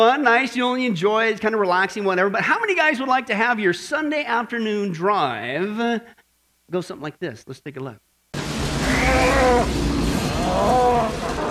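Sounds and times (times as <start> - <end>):
speech: 0.0 - 8.1
cow mooing: 8.8 - 11.4.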